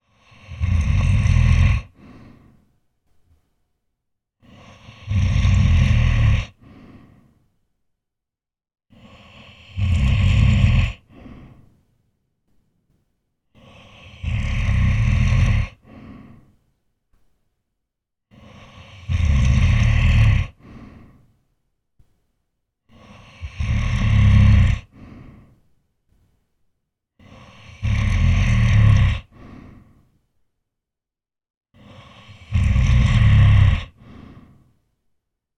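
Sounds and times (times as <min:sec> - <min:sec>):
fantasy giant snoring while sleeping: 0:00.0 - 0:02.6, 0:04.4 - 0:07.4, 0:08.9 - 0:11.7, 0:13.6 - 0:16.6, 0:18.3 - 0:21.2, 0:22.9 - 0:25.6, 0:27.2 - 0:30.1, 0:31.8 - 0:34.8.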